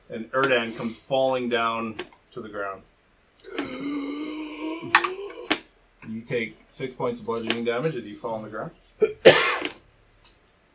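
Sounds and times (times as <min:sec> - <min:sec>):
speech: 0:00.1 - 0:04.2, 0:06.1 - 0:09.8
person coughing up fluid with a harsh sputtering cough: 0:09.0 - 0:09.8.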